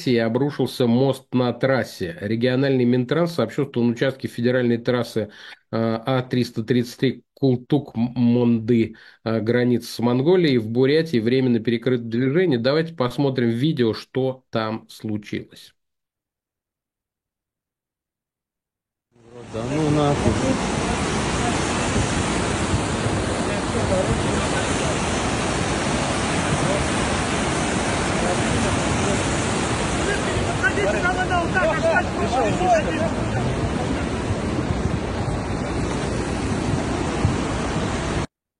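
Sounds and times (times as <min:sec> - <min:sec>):
speech: 0:00.0 - 0:15.8, 0:19.3 - 0:20.8, 0:31.6 - 0:33.6
rushing floodwater washing away a section of the A-333 Kultuk-Mondy highway in Buryatia: 0:19.2 - 0:38.3.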